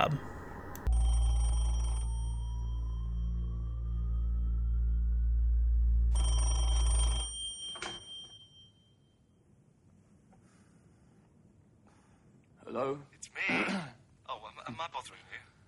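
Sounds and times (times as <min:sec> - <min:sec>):
speech: 0:00.0 - 0:00.3
telephone ringing: 0:00.0 - 0:02.8, 0:06.1 - 0:08.8
steady low hum: 0:00.0 - 0:06.2
faint rising tone: 0:00.0 - 0:07.2.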